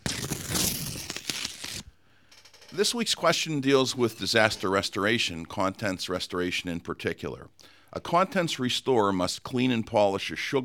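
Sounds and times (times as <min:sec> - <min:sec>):
paper envelope tearing and crinkling as it is opened: 0:00.0 - 0:01.9
speech: 0:02.8 - 0:10.6.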